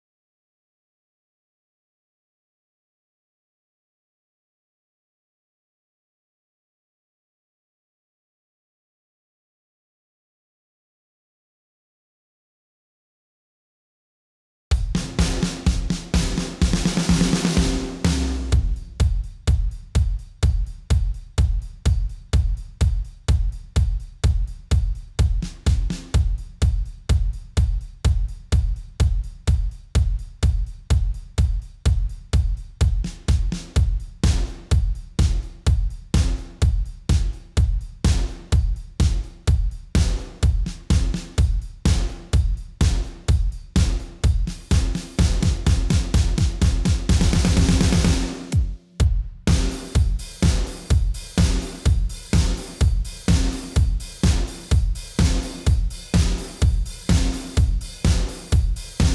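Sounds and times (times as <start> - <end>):
drums stem: 14.7 - 59.1.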